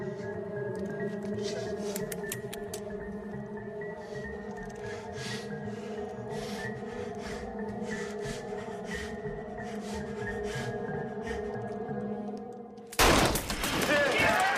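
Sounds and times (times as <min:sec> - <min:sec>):
quiet steady tonal background: 0:00.0 - 0:13.5
loud gunshot in a film scene: 0:13.0 - 0:13.9.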